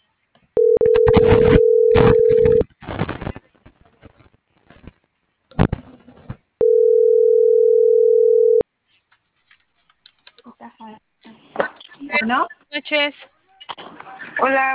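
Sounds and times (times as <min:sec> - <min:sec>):
telephone dial tone while placing a call: 0:00.6 - 0:02.6, 0:06.6 - 0:08.6
speech: 0:13.0 - 0:13.3, 0:14.4 - 0:14.7.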